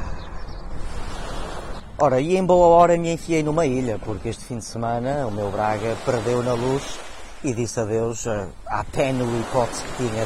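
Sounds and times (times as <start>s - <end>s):
ocean waves washing: 0.0s - 10.2s
speech: 2.0s - 10.2s.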